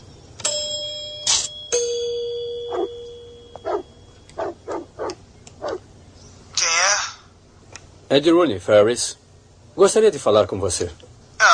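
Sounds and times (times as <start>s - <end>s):
doorbell chime at a house: 0.4s - 4.3s
short sharp dog barks: 2.7s - 2.9s, 3.6s - 3.8s, 4.4s - 5.8s
speech: 8.1s - 9.2s, 9.8s - 11.1s.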